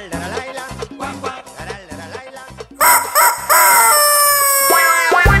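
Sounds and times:
rooster crowing in a children's farm song: 0:02.8 - 0:05.3.

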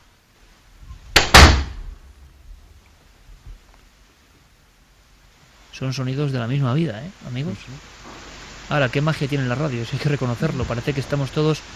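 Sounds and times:
door being shut in a house: 0:01.2 - 0:01.9
speech: 0:05.8 - 0:08.0, 0:08.7 - 0:11.7.

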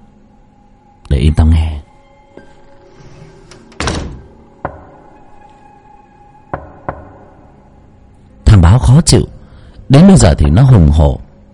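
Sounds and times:
speech: 0:01.3 - 0:01.8, 0:08.8 - 0:09.3, 0:09.9 - 0:11.2
knocking on a door: 0:04.6 - 0:05.1, 0:06.5 - 0:07.4.

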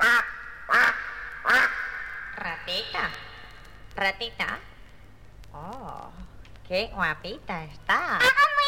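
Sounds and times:
duck quacking: 0:00.0 - 0:03.2
speech: 0:02.7 - 0:03.3, 0:04.0 - 0:04.7, 0:05.5 - 0:08.5.

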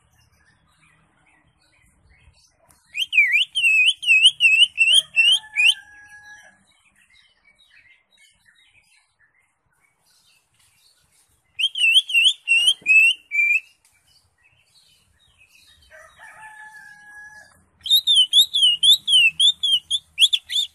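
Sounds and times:
Greater Green Leafbird singing: 0:00.0 - 0:20.7.

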